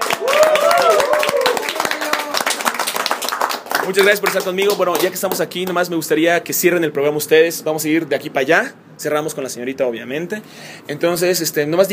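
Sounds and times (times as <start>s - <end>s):
small group clapping in applause: 0.0s - 5.9s
speech: 3.9s - 11.9s.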